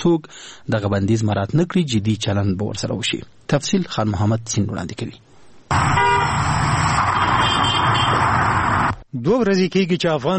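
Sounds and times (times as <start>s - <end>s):
speech: 0.0s - 6.1s, 9.1s - 10.3s
car horn toot: 5.7s - 8.3s
traffic roar from cars in busy Kabul market streets: 5.7s - 9.0s.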